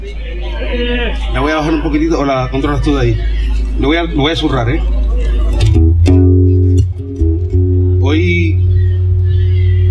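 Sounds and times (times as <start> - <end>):
speech: 0.7 - 5.0
steady low hum: 2.8 - 9.8
loud amplified electric guitar playing sustained distorted notes: 5.1 - 9.8.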